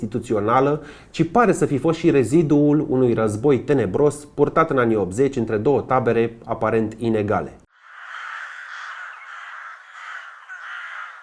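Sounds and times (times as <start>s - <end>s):
speech: 0.0s - 7.6s
crows cawing in a chorus: 7.7s - 11.2s.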